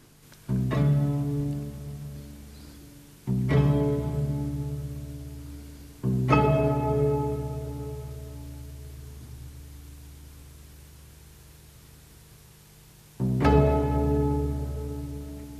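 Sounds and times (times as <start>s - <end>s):
string quintet chords imitating a church bell: 0.5s - 10.0s, 13.2s - 15.5s.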